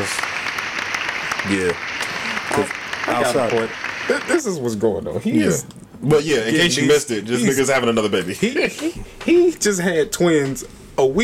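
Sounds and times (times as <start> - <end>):
crowd applauding: 0.0 - 4.6
speech: 1.4 - 1.9, 2.5 - 11.2.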